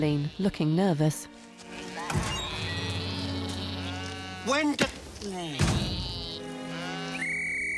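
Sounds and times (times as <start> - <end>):
sheep bleating: 0.0 - 0.8, 1.8 - 7.2
speech: 0.0 - 2.4, 4.4 - 6.1
long shrill whistle tones: 7.0 - 7.7.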